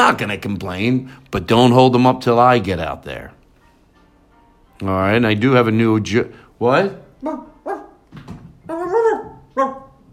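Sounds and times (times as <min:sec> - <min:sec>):
speech: 0:00.0 - 0:03.4, 0:04.8 - 0:07.5
dog barking: 0:07.2 - 0:08.0, 0:08.7 - 0:10.1.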